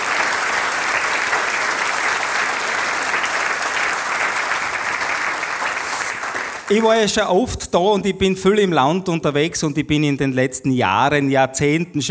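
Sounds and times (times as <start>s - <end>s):
applause from a sizable audience: 0.0s - 7.1s
speech: 6.7s - 12.0s.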